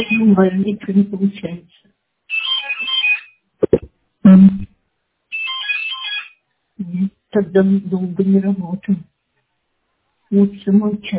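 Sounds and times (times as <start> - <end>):
speech: 0.0 - 2.0, 3.7 - 4.7, 6.9 - 9.1, 10.3 - 11.1
phone ringing in warbling electronic bursts: 2.3 - 3.9, 5.3 - 6.4
thump: 3.6 - 3.9.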